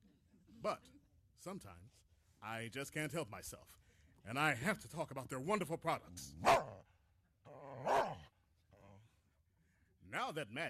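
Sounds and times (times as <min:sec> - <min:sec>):
speech: 0:00.6 - 0:06.8, 0:10.3 - 0:10.6
dog barking: 0:06.4 - 0:06.8, 0:07.8 - 0:08.3.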